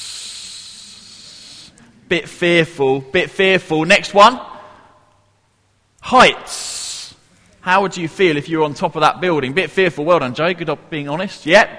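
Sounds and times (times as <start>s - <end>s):
voice imitating a snake hiss: 0.0s - 1.8s, 6.5s - 7.2s
speech: 2.1s - 4.5s, 6.1s - 6.7s, 7.6s - 11.7s.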